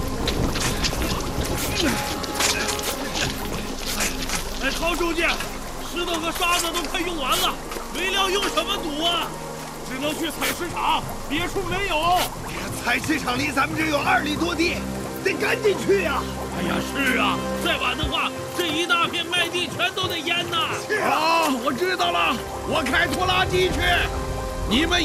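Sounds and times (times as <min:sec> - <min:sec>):
strong sea wind: 0:00.0 - 0:04.6, 0:22.6 - 0:25.0
heavy rain: 0:00.0 - 0:25.0
speech: 0:01.8 - 0:02.1, 0:04.8 - 0:25.0.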